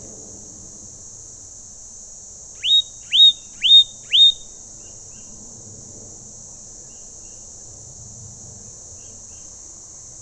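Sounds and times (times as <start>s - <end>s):
Leaden flycatcher Myiagra rubecula whistled call: 2.6s - 4.5s.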